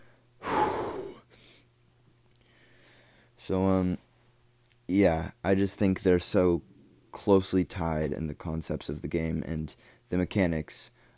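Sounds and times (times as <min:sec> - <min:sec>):
breathy exhale: 0:00.0 - 0:01.6
speech: 0:03.4 - 0:04.0, 0:04.9 - 0:11.0.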